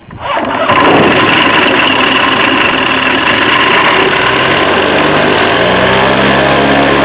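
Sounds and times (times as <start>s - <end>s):
Rotax 912 aircraft engine starting: 0.0s - 7.0s.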